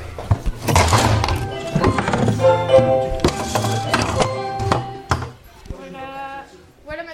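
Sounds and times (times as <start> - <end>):
wooden chairs lifted and set onto classroom desks: 0.2 - 5.4.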